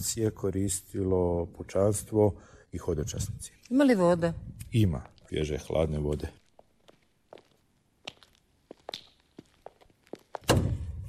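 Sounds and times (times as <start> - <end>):
speech: 0.0 - 6.4
old monastery door landing with a heavy booming thud: 10.4 - 11.0.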